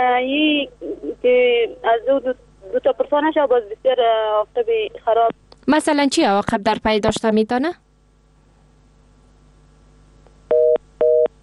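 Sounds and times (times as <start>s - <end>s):
speech: 0.0s - 7.8s
telephone tone after a dropped call: 10.5s - 11.3s.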